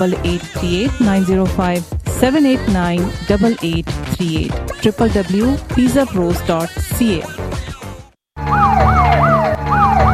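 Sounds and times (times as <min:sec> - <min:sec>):
speech: 0:00.0 - 0:07.4
police car siren yelping: 0:08.4 - 0:10.1.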